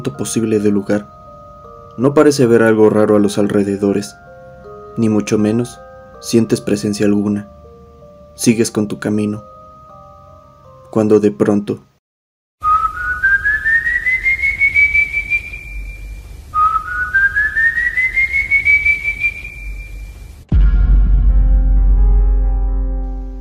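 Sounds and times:
speech: 0.0 - 1.2, 2.0 - 4.3, 5.0 - 7.6, 8.4 - 9.5, 10.9 - 11.9
eerie human whistles sliding upward: 12.6 - 20.1
low droning tone with ringing harmonics: 19.7 - 23.3.

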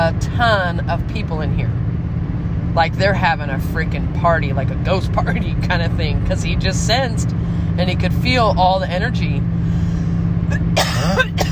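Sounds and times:
speech: 0.0 - 1.8, 2.8 - 9.6
steady low engine-like hum: 0.0 - 11.5
harsh coughs: 10.5 - 11.5.

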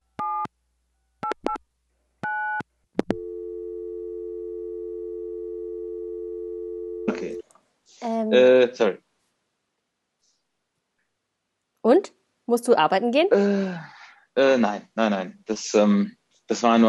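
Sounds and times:
steady loud telephone line tone: 2.3 - 7.4
speech: 8.3 - 9.0, 12.5 - 16.8.

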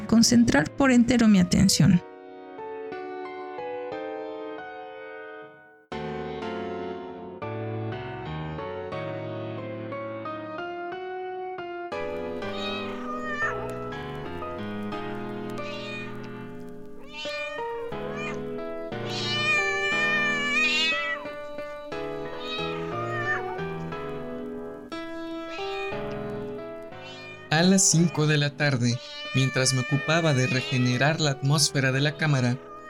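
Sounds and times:
speech: 0.1 - 2.1, 27.8 - 32.7
mother cat with kittens meowing loudly: 12.2 - 14.1, 15.3 - 23.7, 25.1 - 26.2, 26.9 - 31.2, 32.5 - 32.8.

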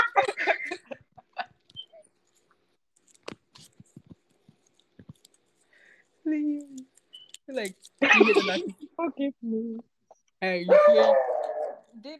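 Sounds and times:
speech: 7.6 - 11.3
dog barking: 10.7 - 11.9.

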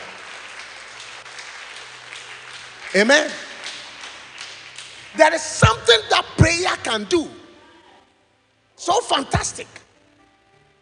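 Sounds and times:
crowd applauding with many hands clapping: 0.0 - 6.4
speech: 2.9 - 3.4, 5.2 - 7.4, 8.8 - 9.8.

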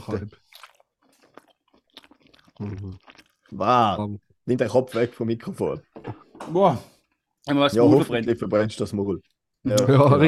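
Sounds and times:
speech: 0.0 - 0.4, 2.6 - 10.2
wet smacking chewing of hot food: 0.3 - 3.6.

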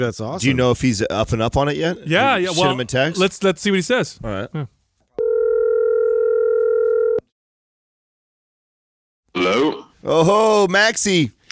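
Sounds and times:
speech: 0.0 - 4.8, 10.0 - 11.4
telephone ringback tone of an outgoing call: 5.2 - 7.2.

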